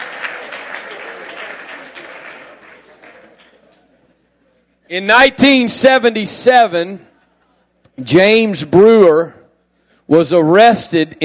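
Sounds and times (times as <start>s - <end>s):
audience clapping hands: 0.0s - 3.9s
speech: 4.9s - 7.1s, 8.0s - 9.4s, 10.1s - 11.2s.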